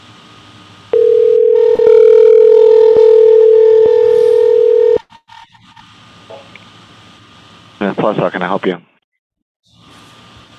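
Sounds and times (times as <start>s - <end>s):
telephone line steady single-pitch tone: 1.0s - 5.0s
speech: 8.0s - 8.9s.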